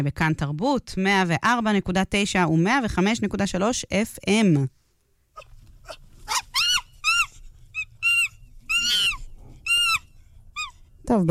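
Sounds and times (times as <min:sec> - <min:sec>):
speech: 0:00.0 - 0:04.8, 0:11.1 - 0:11.3
low rumble: 0:00.4 - 0:11.3
high-pitched monkey whoops and chirps: 0:05.4 - 0:11.3.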